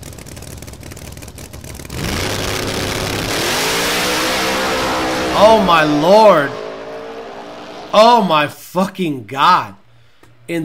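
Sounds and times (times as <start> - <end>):
supercharged drag car accelerating at full throttle down the track in Orlando: 0.0 - 8.3
speech: 5.4 - 6.6, 7.9 - 9.8, 10.5 - 10.6.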